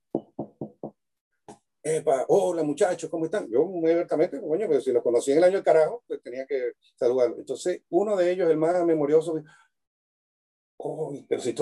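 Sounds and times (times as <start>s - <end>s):
knocking on a door: 0.1s - 1.0s
speech: 1.8s - 9.7s, 10.8s - 11.6s.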